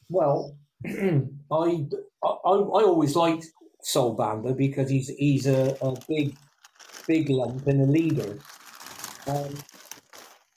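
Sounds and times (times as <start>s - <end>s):
speech: 0.1s - 6.5s, 7.1s - 8.6s, 9.3s - 9.7s
paper crinkling and shuffling: 5.2s - 10.5s.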